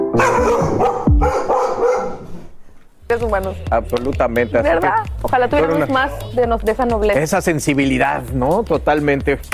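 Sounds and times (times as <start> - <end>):
dog barking: 0.2 - 2.5
speech: 3.2 - 9.5.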